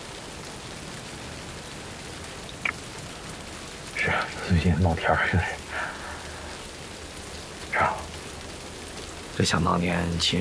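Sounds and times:
steady rain: 0:00.0 - 0:10.3
speech: 0:04.1 - 0:05.6, 0:09.4 - 0:10.3.

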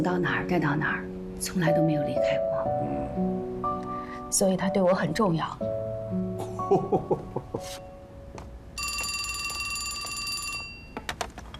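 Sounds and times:
speech: 0:00.0 - 0:03.3, 0:04.3 - 0:05.8, 0:06.7 - 0:07.9
laughter: 0:06.4 - 0:07.8
telephone ringing with a bright electronic ring: 0:08.8 - 0:11.1.

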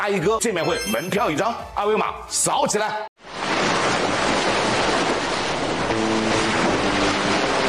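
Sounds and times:
speech: 0:00.0 - 0:03.1
ocean waves and surf roaring: 0:03.2 - 0:07.6.

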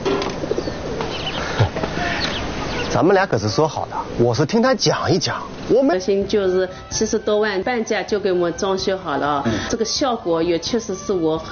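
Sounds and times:
pigeon cooing: 0:00.0 - 0:04.2
steady hissing noise: 0:00.0 - 0:11.5
speech: 0:03.0 - 0:11.5.

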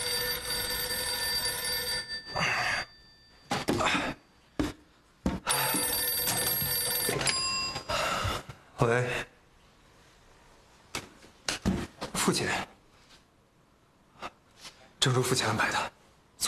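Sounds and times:
old-fashioned telephone bell ringing in long metallic bursts: 0:00.0 - 0:04.2, 0:05.5 - 0:08.3
speech: 0:08.8 - 0:09.3, 0:12.3 - 0:12.7, 0:15.0 - 0:16.4.

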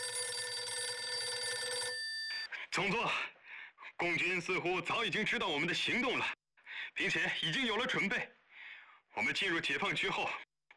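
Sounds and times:
electric telephone ringing with an incoming call: 0:00.0 - 0:02.5
speech: 0:02.8 - 0:03.3, 0:04.0 - 0:08.4, 0:09.2 - 0:10.7.

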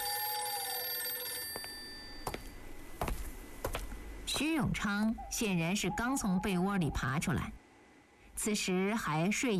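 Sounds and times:
old telephone bell ringing: 0:00.0 - 0:02.6
speech: 0:04.4 - 0:07.6, 0:08.4 - 0:09.5.

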